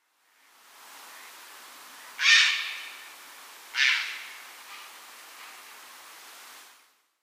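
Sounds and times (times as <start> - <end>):
grey heron Ardea cinerea: 2.2 - 3.0, 3.8 - 4.3.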